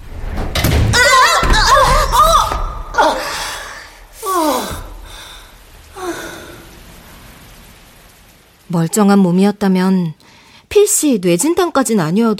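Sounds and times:
door slamming shut in the wind: 0.1s - 3.2s
speech: 8.7s - 10.2s, 10.9s - 12.3s.

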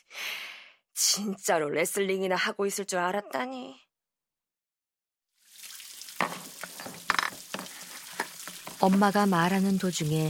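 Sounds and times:
speech: 1.1s - 3.8s, 8.8s - 10.2s
running tap water while washing dishes: 5.4s - 10.2s
dishes clinking and knocking in the sink: 6.2s - 8.8s.

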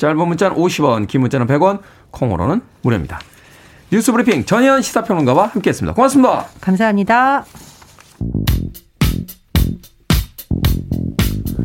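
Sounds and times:
speech: 0.0s - 3.3s, 3.9s - 8.8s
punchy bass guitar riff in a rock groove: 8.2s - 11.6s.

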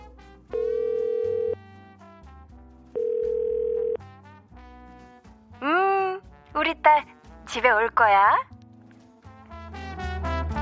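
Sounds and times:
soft music: 0.0s - 10.6s
phone ringback tone: 0.5s - 1.6s, 3.0s - 4.0s
speech: 7.6s - 8.5s.

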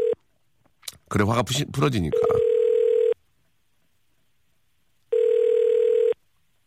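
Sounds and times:
speech: 1.1s - 2.5s
electronic ringback tones of an outgoing phone call to a radio listener: 2.1s - 3.2s, 5.1s - 6.2s.

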